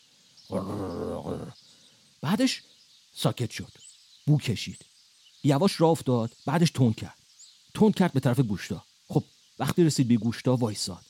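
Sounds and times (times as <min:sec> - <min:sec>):
person voicing a growl imitating a snarling dog: 0:00.5 - 0:01.6
speech: 0:00.5 - 0:01.6, 0:02.2 - 0:07.2, 0:07.8 - 0:11.0.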